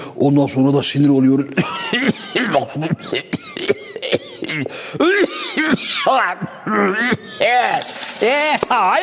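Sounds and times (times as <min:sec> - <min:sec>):
speech: 0:00.2 - 0:03.8, 0:04.6 - 0:09.0
man coughing after choking on exhaust smoke from a passing minibus: 0:01.6 - 0:07.7.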